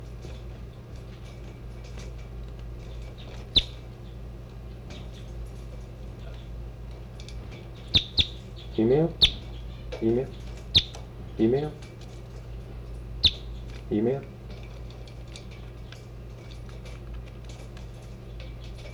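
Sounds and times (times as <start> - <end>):
small birds calling: 0.2 - 18.9
low hum: 3.3 - 3.9, 7.4 - 12.1
speech: 8.8 - 9.3, 10.0 - 10.4, 11.4 - 11.8, 13.9 - 14.3.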